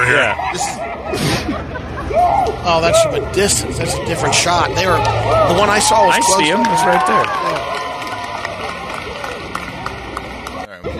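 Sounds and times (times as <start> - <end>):
speech: 0.0 - 7.8
crowd hooting and hollering: 0.0 - 10.9
laughter: 0.2 - 3.3
shouts: 2.1 - 3.1, 4.8 - 9.4.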